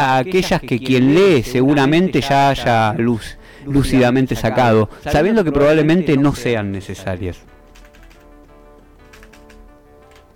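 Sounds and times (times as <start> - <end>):
speech: 0.0 - 7.5
typing on a computer keyboard: 7.7 - 8.4, 9.0 - 10.3.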